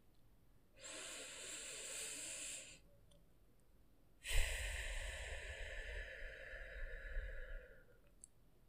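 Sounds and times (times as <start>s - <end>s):
quick breaths in through the nose and out through the mouth in a breathing exercise: 0.8s - 2.9s, 4.2s - 8.2s.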